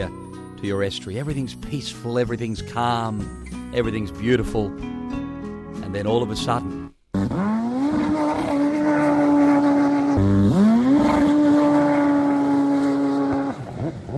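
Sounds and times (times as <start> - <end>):
speech: 0.0 - 5.0, 5.9 - 7.4
jet skis roaring on an estuary: 7.4 - 14.1.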